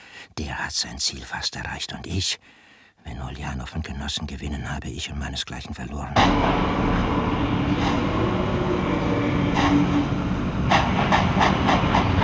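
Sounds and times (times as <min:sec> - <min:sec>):
speech: 0:00.4 - 0:10.4
train at a station rumbling with a hiss before departure: 0:06.2 - 0:12.2.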